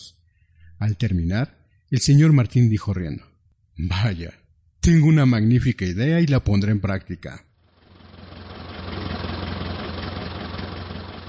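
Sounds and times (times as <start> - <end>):
speech: 0.8 - 7.5
old car engine idling: 7.6 - 11.2.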